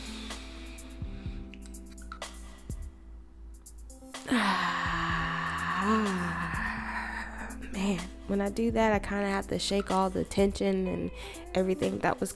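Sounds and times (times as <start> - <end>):
deep breath in and out as a deep-breathing exercise: 0.0 - 1.5, 4.3 - 7.6
speech: 7.9 - 12.3.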